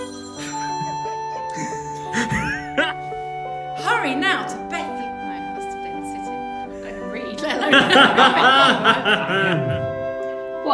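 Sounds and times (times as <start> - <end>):
steady electronic phone ringtone: 0.0 - 1.5
laughter: 0.4 - 3.1, 7.4 - 10.1
speech: 7.7 - 9.8.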